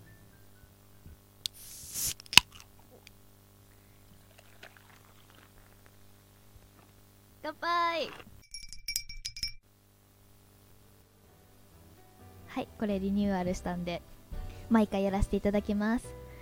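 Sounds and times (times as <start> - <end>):
speech: 7.5 - 8.3, 12.6 - 16.2
glass clinking for a toast with a highball: 8.4 - 9.6.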